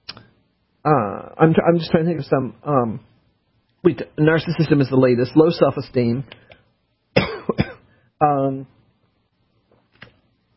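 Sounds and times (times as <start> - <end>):
speech: 0.8 - 3.1, 3.8 - 6.5, 8.2 - 8.8
person coughing harshly: 7.2 - 7.9.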